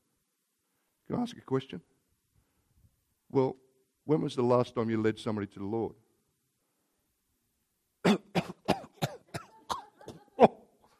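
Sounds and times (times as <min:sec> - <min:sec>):
speech: 0:01.1 - 0:02.0, 0:03.3 - 0:06.0
harsh coughing fit: 0:08.0 - 0:10.7.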